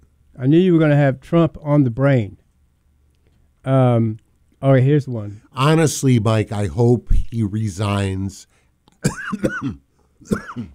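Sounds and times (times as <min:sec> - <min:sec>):
speech: 0:00.4 - 0:02.4, 0:03.6 - 0:10.7
person coughing in a harsh fit: 0:09.0 - 0:10.7.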